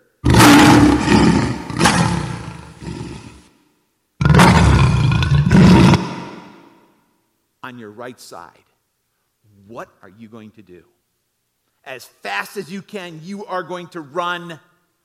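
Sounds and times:
lion roaring: 0.2 - 3.5, 4.2 - 6.7
speech: 7.7 - 8.7, 9.7 - 11.0, 11.8 - 14.7.

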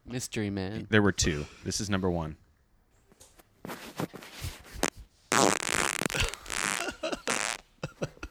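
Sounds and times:
speech: 0.1 - 2.4
recorded fart: 4.7 - 7.7.

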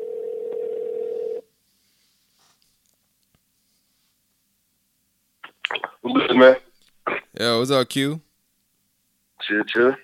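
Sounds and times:
telephone tone: 0.0 - 1.5
speech: 6.1 - 6.6, 7.4 - 8.2, 9.5 - 10.0.

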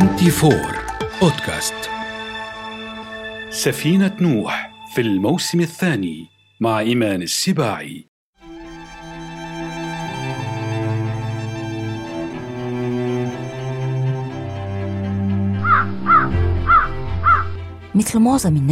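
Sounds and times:
soft instrumental music: 0.0 - 6.3, 8.4 - 18.7
speech: 0.2 - 1.9, 3.6 - 8.1, 18.0 - 18.7
crow cawing: 15.6 - 17.6.

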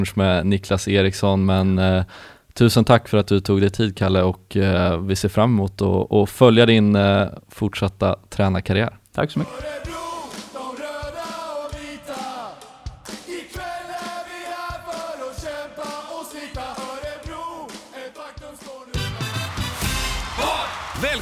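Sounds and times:
speech: 0.0 - 10.0
packed ice hockey arena crowd cheering and chanting after a goal: 9.4 - 21.2.

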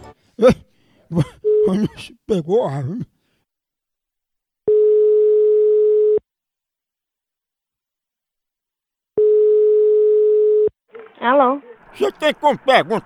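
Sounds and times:
speech: 0.4 - 1.3, 2.0 - 3.1, 11.2 - 13.0
ringing tone of an outgoing telephone call: 4.7 - 6.2, 9.2 - 10.7
laughter: 11.8 - 13.0.

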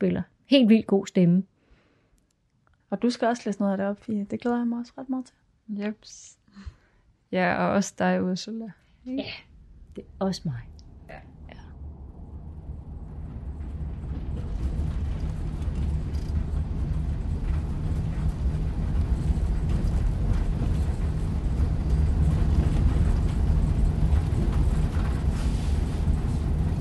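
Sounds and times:
speech: 0.0 - 1.5, 2.9 - 11.3
moving bus engine rumble: 10.2 - 26.7
faint rattles: 10.6 - 26.7.

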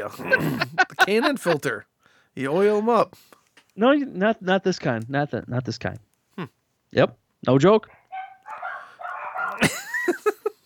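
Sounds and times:
laughter: 0.0 - 1.7, 9.4 - 10.6
speech: 0.0 - 8.0
dogs yipping and whining: 7.9 - 10.0.

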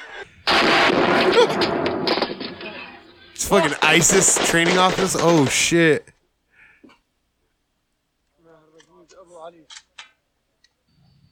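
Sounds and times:
gunfire from guns shot inside an office: 0.4 - 6.0
speech: 3.5 - 6.1.

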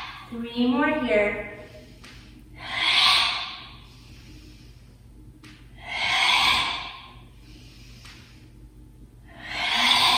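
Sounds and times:
speech: 0.3 - 1.6
slow breathing during a guided movement exercise: 1.4 - 10.1.

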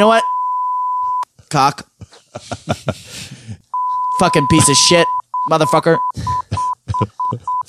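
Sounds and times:
speech: 0.0 - 0.3, 1.5 - 3.4, 4.2 - 7.6
censor bleep tone: 0.0 - 1.2, 3.8 - 7.6
laughter: 2.0 - 3.5, 6.1 - 7.6.

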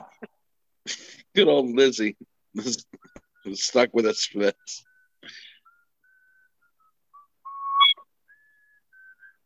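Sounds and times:
speech: 0.9 - 5.4
person whistling: 4.8 - 9.4.

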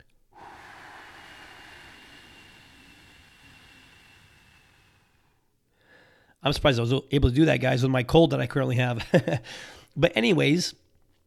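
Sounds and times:
slow steady exhale during a breathing exercise: 0.0 - 6.4
speech: 6.4 - 10.8.

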